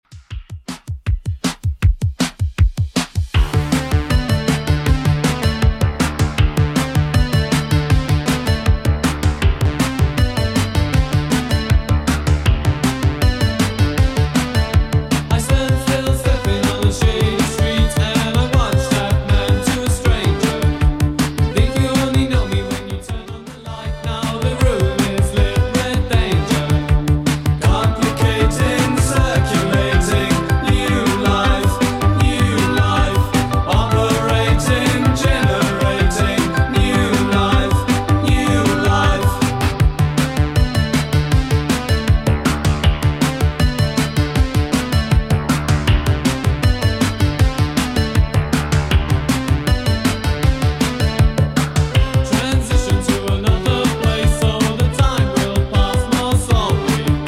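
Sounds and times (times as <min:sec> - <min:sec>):
80s style drum machine beat at 158 bpm: 0:00.0 - 0:57.2.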